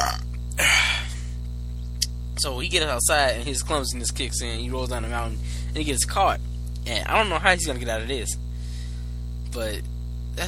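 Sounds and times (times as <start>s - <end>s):
loud raspy low gurgling burp: 0.0s - 1.0s
steady hum: 0.0s - 10.4s
speech: 2.4s - 8.4s, 9.5s - 10.4s.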